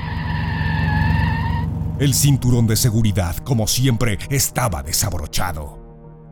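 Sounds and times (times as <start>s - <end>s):
car tires screeching down a slope: 0.0s - 2.9s
deep car engine rumble: 0.0s - 5.7s
speech: 2.0s - 5.8s.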